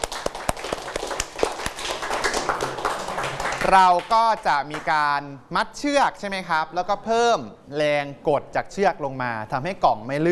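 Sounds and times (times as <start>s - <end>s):
group of students clapping in a classroom: 0.0s - 5.0s
speech: 3.7s - 10.3s.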